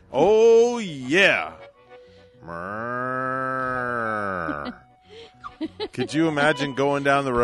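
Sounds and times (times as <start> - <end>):
speech: 0.1 - 1.6, 5.9 - 7.4
cow mooing: 2.4 - 4.8
laughter: 4.3 - 7.2.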